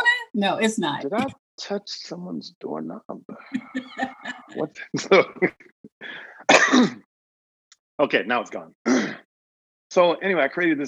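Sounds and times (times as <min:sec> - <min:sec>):
speech: 0:00.4 - 0:07.0, 0:08.0 - 0:09.2, 0:10.0 - 0:10.8
laughter: 0:03.3 - 0:05.7
person clearing throat: 0:06.5 - 0:07.1.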